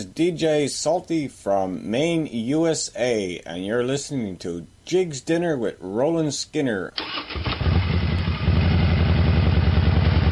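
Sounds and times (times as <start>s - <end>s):
speech: 0.0s - 7.6s
motorcycle engine roaring during a charity motorcycle ride: 7.0s - 10.3s.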